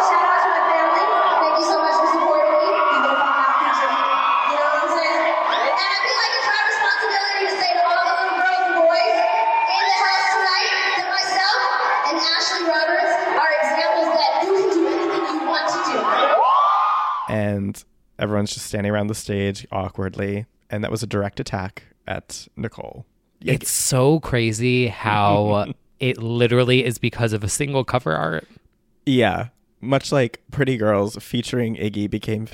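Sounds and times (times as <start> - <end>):
large concert crowd roaring and cheering: 0.0 - 17.3
high-pitched shouts and whoops from concert crowd: 0.0 - 17.4
speech: 17.7 - 32.5.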